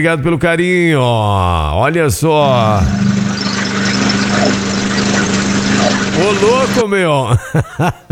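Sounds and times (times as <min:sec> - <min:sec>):
speech: 0:00.0 - 0:03.2, 0:04.3 - 0:05.2, 0:06.2 - 0:08.0
loud engine running with rough mechanical rattle: 0:02.4 - 0:06.8
laughter: 0:06.0 - 0:08.0.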